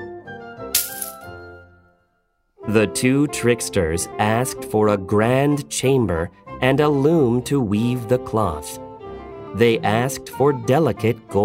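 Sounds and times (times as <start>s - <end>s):
gold coins clinking as payment is handed over: 0.8s - 1.3s
speech: 2.7s - 8.8s, 9.5s - 11.4s.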